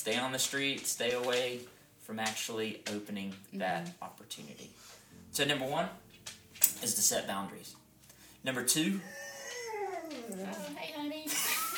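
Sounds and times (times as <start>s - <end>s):
speech: 0.0s - 6.0s, 6.8s - 7.8s, 8.4s - 9.2s, 10.3s - 11.5s
dog whining: 9.0s - 10.8s.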